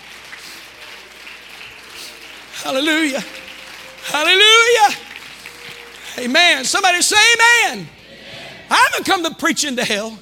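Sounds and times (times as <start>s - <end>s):
audience clapping during a sermon: 0.0s - 7.9s
speech: 2.6s - 3.4s, 4.0s - 5.0s, 6.2s - 8.0s, 8.7s - 10.2s.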